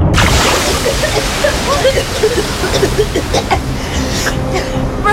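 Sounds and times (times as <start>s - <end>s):
ocean wave crashing over swimmers near a reef edge: 0.1s - 5.1s.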